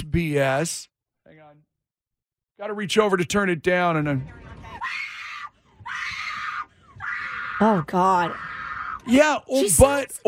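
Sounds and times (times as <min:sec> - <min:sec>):
speech: 0:00.1 - 0:00.9, 0:02.6 - 0:05.0, 0:07.6 - 0:10.2
woman screaming in a played recording: 0:04.7 - 0:09.1.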